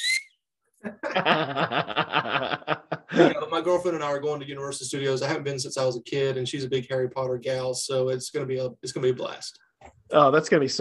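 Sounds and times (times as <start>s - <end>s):
short sharp whistle blast: 0.0s - 0.3s
speech: 0.8s - 2.5s, 3.2s - 10.8s
person laughing and chortling loudly: 0.9s - 3.6s.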